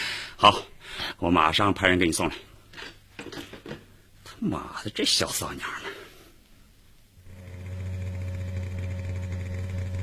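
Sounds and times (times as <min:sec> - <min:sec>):
speech: 0:00.4 - 0:03.5, 0:04.4 - 0:06.0
motorcycle engine speeding through quiet streets at night: 0:07.3 - 0:10.0.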